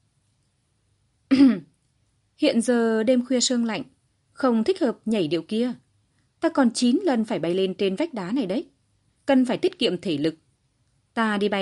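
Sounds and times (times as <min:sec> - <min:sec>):
woman clearing her throat: 0:01.3 - 0:01.8
speech: 0:02.4 - 0:05.8, 0:06.4 - 0:08.7, 0:09.3 - 0:10.4, 0:11.2 - 0:11.5.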